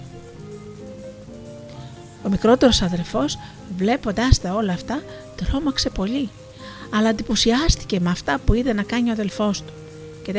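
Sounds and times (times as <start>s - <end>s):
light rain falling: 0.0s - 10.3s
low sustained tonal hum: 0.0s - 10.3s
speech: 2.2s - 10.3s.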